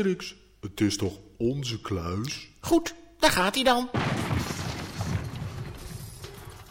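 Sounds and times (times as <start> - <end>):
speech: 0.0 - 4.5
heavy vault door smashed open from inside, crash of metal and debris: 4.0 - 6.6.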